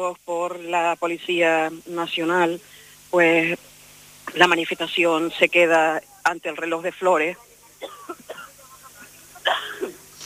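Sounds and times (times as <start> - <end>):
speech: 0.0 - 3.7, 4.3 - 8.0
person coughing: 7.8 - 8.5, 9.4 - 10.0.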